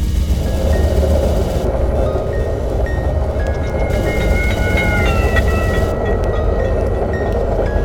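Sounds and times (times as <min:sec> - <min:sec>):
moving train rumbling and clattering: 0:00.0 - 0:07.8
bell ringing heard from a moving train: 0:02.4 - 0:07.3.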